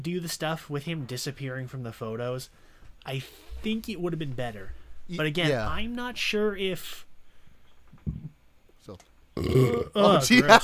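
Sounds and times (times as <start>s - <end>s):
speech: 0.0s - 7.1s, 8.8s - 10.6s
faint shuffling: 0.9s - 8.2s
loud raspy burp: 9.4s - 10.2s.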